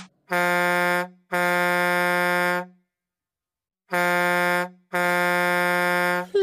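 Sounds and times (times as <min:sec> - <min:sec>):
truck air horn honking: 0:00.2 - 0:02.9, 0:03.9 - 0:06.3.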